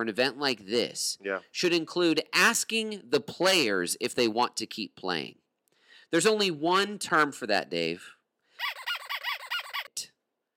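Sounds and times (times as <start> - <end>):
speech: 0.0 - 5.4, 6.1 - 8.2
squeaky toy being squeezed: 8.6 - 10.1.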